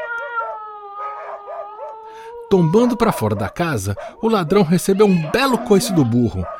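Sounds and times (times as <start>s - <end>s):
dog whining and howling: 0.0s - 6.5s
speech: 2.5s - 6.5s.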